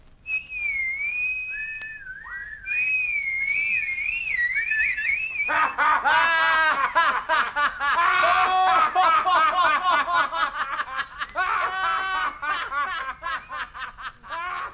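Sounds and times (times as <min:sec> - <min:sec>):
person whistling a wavering sliding tune: 0:00.3 - 0:05.8
loud rhythmic laughter: 0:05.5 - 0:14.7.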